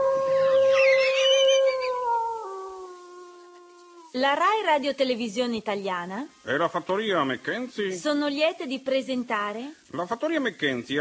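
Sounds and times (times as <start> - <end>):
person imitating a wolf howl: 0.0 - 4.1
speech: 4.2 - 10.9.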